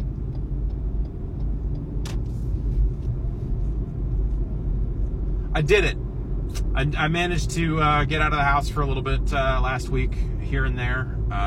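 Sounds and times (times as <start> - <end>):
faint regular ticking: 0.0 - 1.9
car engine rumble from inside a moving car: 0.0 - 11.4
road noise from inside a moving car: 0.0 - 11.4
speech: 5.6 - 6.0, 6.8 - 11.4
sharp click: 6.5 - 6.7.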